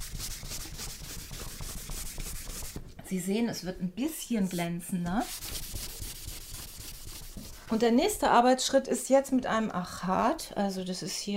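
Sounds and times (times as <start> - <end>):
cloth polishing dried egg-white bound paint: 0.0 - 2.8, 5.2 - 7.8
speech: 3.1 - 5.4, 7.7 - 11.3.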